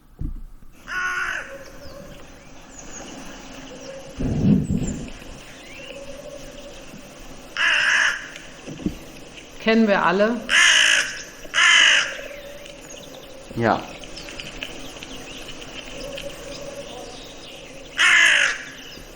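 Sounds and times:
faint steady hiss: 0.0s - 19.1s
hooded crow cawing: 0.9s - 1.9s, 7.6s - 8.5s, 10.5s - 12.7s, 18.0s - 18.9s
speech: 9.7s - 10.6s, 13.6s - 13.9s.

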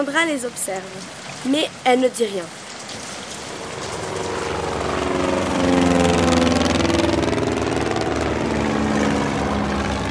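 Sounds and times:
speech: 0.0s - 3.0s
helicopter engine roar with rapid rotor chopping: 3.4s - 10.0s.

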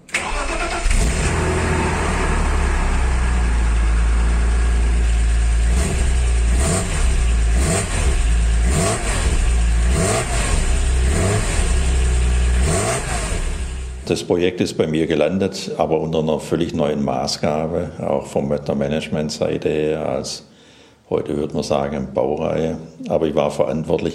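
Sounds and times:
Z3 M Coupé S54 six-cylinder engine starting, idling and revving: 0.0s - 14.1s
speech: 14.1s - 20.5s, 21.1s - 24.1s.

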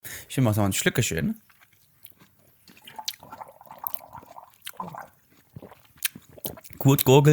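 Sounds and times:
speech: 0.3s - 1.6s, 6.8s - 7.3s
wet lip smacking and chewing: 1.4s - 7.2s.

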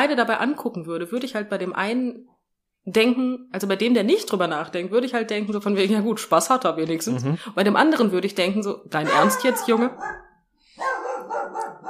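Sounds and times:
speech: 0.0s - 11.8s
dog barking: 9.0s - 11.8s.

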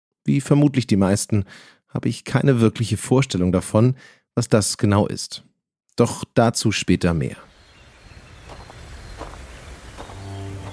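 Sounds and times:
speech: 0.2s - 7.5s
crunching footsteps while hiking: 8.5s - 10.7s.

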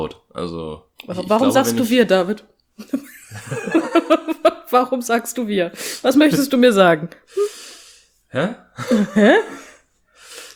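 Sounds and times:
speech: 0.0s - 7.6s, 8.3s - 9.6s
laughter: 2.8s - 4.7s, 8.8s - 9.8s
person breathing noisily with breathy whimpering gasps: 7.3s - 8.2s, 9.5s - 10.5s.

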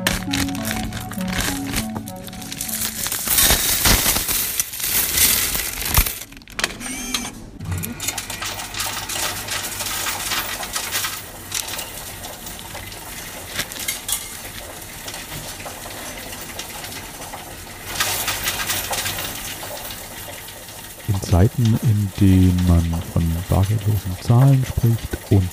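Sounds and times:
coins pouring into a coin counting machine: 0.0s - 6.3s, 7.9s - 25.5s
coin counting machine mechanical whir: 5.2s - 9.2s
speech: 21.6s - 25.5s.

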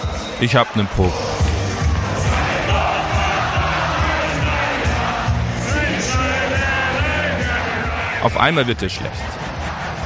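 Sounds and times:
rhythmic shouting and yells of beer tent crowd: 0.1s - 10.0s
speech: 0.4s - 1.3s, 8.2s - 9.4s
packed beer tent crowd bellowing along to a song: 1.0s - 8.2s, 9.2s - 10.0s
thumping beat: 1.2s - 8.0s.

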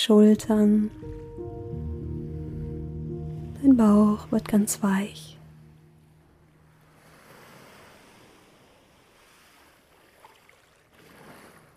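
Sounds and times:
speech: 0.0s - 1.2s, 3.6s - 5.4s
ocean waves breaking on shore: 0.0s - 11.7s.

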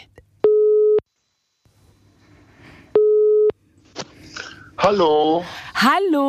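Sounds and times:
ringback tones of an outgoing phone call: 3.0s - 3.5s
speech: 4.8s - 6.2s.

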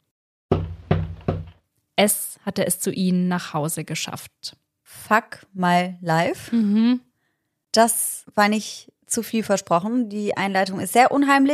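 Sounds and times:
loud heavy knocks on a door with deep resonant thud: 0.5s - 1.6s
speech: 2.0s - 7.1s, 7.7s - 11.5s.

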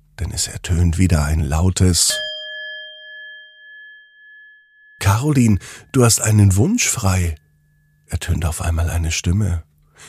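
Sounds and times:
speech: 0.3s - 2.3s, 5.2s - 7.4s, 8.1s - 10.0s
singing bowl struck with wooden mallet: 2.1s - 5.6s.

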